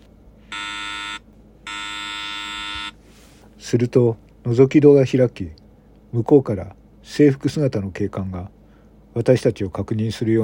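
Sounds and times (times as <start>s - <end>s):
wall-mounted electric door buzzer ringing: 0.5s - 3.0s
speech: 3.7s - 8.6s, 9.2s - 10.4s.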